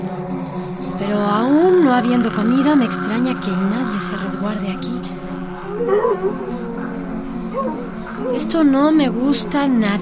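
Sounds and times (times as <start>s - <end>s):
speech: 1.0s - 5.2s, 5.8s - 6.6s, 7.6s - 9.9s
nervous dog at a supermarket whimpering and whining: 5.6s - 6.6s.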